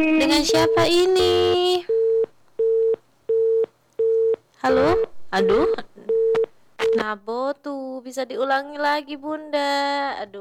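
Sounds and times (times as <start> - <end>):
speech: 0.0 - 2.0, 4.6 - 5.9, 6.9 - 10.4
telephone busy tone after a call drops: 0.3 - 4.4.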